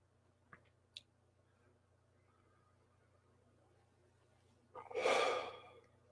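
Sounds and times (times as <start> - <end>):
low steady hum: 0.0 - 6.1
short sniffs during a breathing exercise: 4.8 - 5.7
long airy exhalation during a breathing exercise: 4.8 - 5.9.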